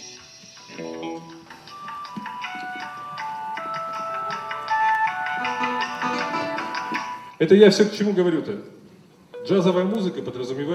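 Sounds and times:
mobile phone ringtone playing a bright electronic melody: 0.5s - 7.4s
speech: 7.4s - 8.8s, 9.5s - 10.7s.

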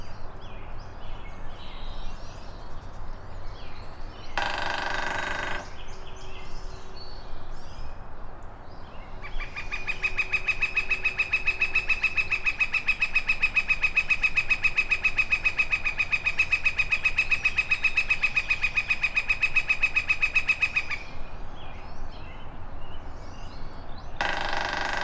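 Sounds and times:
northern flicker (Colaptes auratus) giving rapid ringing notes: 4.3s - 5.9s, 9.2s - 21.1s, 24.2s - 25.0s.

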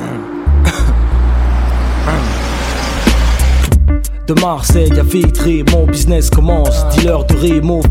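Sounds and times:
road noise: 0.0s - 4.0s
taxi car engine rumbling while driving: 0.0s - 4.0s
speech: 4.3s - 7.8s.

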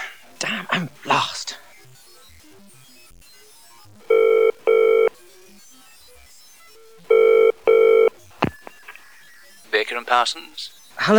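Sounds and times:
speech: 0.4s - 1.4s, 10.0s - 11.1s
telephone ringing in classic double-burst pattern: 4.1s - 5.2s, 7.1s - 10.4s.

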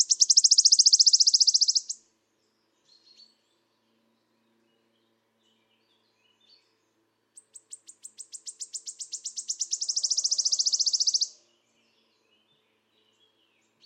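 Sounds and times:
Phylloscopus sibilatrix wood warbler buzzy shivering trill: 0.0s - 2.0s, 9.1s - 11.3s
faint chirps: 0.0s - 2.0s, 7.4s - 11.4s
high ticks: 0.0s - 2.0s, 9.1s - 11.3s.

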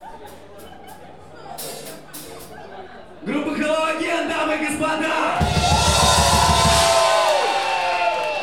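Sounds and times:
speech: 3.2s - 5.8s
large concert crowd shouting and cheering: 4.8s - 8.4s
heavy low thumps: 5.4s - 7.2s.

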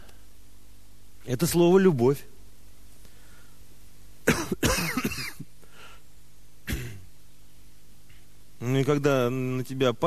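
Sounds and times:
speech: 1.3s - 2.3s, 8.8s - 10.0s
person clearing throat: 4.3s - 5.5s, 6.6s - 7.1s
person coughing: 4.3s - 5.5s, 6.7s - 7.0s.

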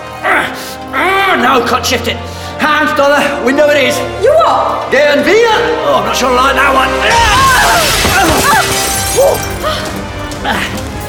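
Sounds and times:
speech: 1.4s - 9.6s, 10.4s - 10.8s
pane of glass shattering as someone leaps through it: 7.1s - 10.0s
glass shards tinkling and scattering: 7.8s - 10.0s.

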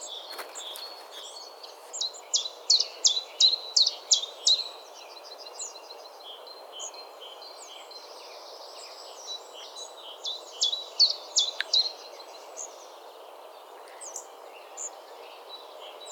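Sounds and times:
thin bird twittering and buzzy trills: 0.0s - 13.0s
steady background noise: 0.0s - 16.1s.

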